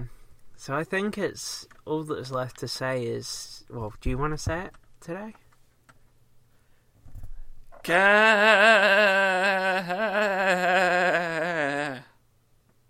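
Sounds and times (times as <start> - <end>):
speech: 0.0 - 5.4, 7.8 - 11.5
soft breath: 6.5 - 7.6
person imitating a goat bleating: 7.8 - 12.1.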